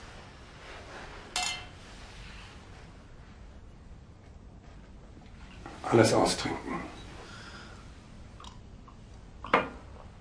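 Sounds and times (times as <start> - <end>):
glasses clinking in a toast: 1.4 - 1.8
speech: 5.9 - 7.0.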